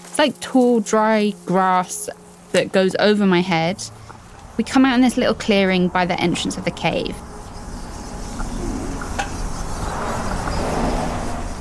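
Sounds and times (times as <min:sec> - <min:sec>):
speech: 0:00.2 - 0:04.0, 0:04.6 - 0:07.3
cars whooshing past on a nearby highway: 0:03.4 - 0:11.6.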